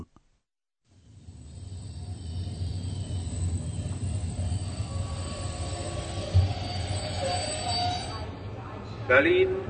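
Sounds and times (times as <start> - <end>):
train rumbling as it arrives at a station in Berlin: 0.9 - 9.6
faint high train wheel squeals: 1.1 - 8.5
speech: 9.1 - 9.6.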